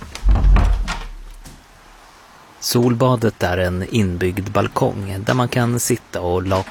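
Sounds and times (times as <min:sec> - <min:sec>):
dull thud as a door moves: 0:00.2 - 0:01.6
speech: 0:02.7 - 0:06.6.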